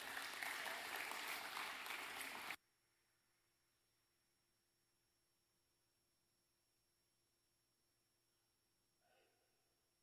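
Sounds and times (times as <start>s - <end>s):
crowd applauding: 0.0s - 2.6s.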